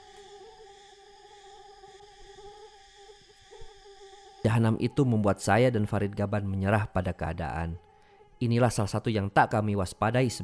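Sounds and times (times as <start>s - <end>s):
mosquitoes buzzing: 0.0s - 5.0s
speech: 4.4s - 10.4s.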